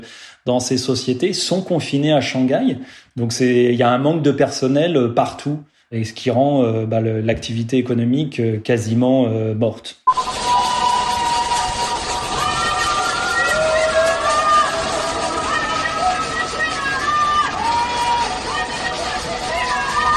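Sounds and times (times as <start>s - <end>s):
speech: 0.0s - 10.2s
many residents shouting and wailing around a city block: 10.1s - 20.1s.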